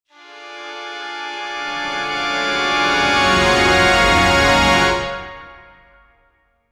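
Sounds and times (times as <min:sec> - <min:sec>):
strings accelerating: 0:01.0 - 0:05.8.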